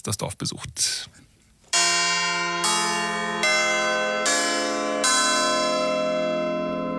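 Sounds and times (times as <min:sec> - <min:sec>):
speech: 0:00.0 - 0:01.2
church bells ringing a peal: 0:01.7 - 0:06.9.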